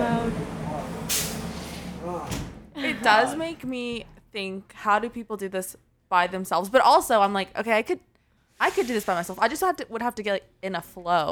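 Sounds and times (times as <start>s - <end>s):
garbage truck air brake hiss: 1.1s - 1.8s
speech: 3.0s - 11.2s.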